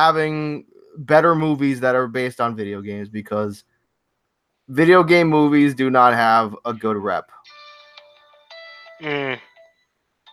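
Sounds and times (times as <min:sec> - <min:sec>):
speech: 0:00.0 - 0:03.7, 0:04.7 - 0:07.4, 0:09.0 - 0:09.5
phone ringing with a melodic electronic ringtone: 0:07.5 - 0:10.3.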